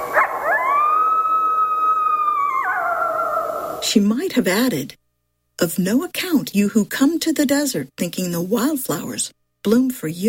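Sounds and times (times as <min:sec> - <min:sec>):
coyote howling: 0:00.0 - 0:03.8
speech: 0:03.9 - 0:05.0, 0:05.6 - 0:10.2.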